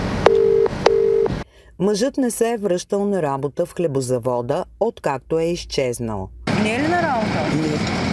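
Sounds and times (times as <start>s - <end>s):
telephone line tone beeps: 0.2s - 1.4s
speech: 1.8s - 8.1s.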